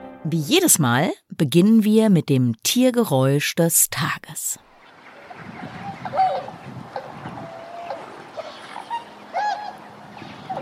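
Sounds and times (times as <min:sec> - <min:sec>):
speech: 0:00.2 - 0:04.6
trumpeter swans honking: 0:04.8 - 0:10.5.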